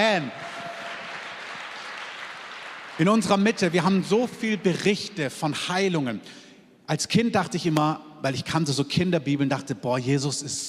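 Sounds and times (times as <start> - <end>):
speech: 0.0 - 0.5, 3.0 - 10.6
audience applause: 0.0 - 4.0.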